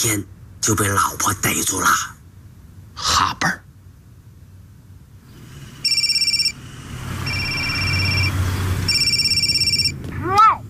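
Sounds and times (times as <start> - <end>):
speech: 0.0 - 2.2, 3.0 - 3.6
electronic telephone ringing: 5.8 - 6.6, 7.2 - 10.0.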